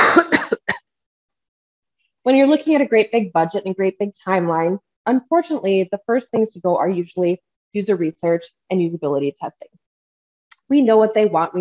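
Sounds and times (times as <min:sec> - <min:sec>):
person coughing harshly: 0:00.0 - 0:00.8
speech: 0:02.3 - 0:09.8, 0:10.7 - 0:11.5.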